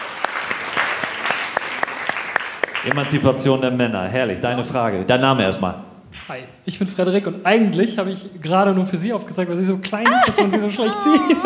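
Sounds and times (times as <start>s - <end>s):
audience applause at a live show: 0.0s - 3.7s
speech: 2.8s - 11.4s
laughter: 10.0s - 11.4s.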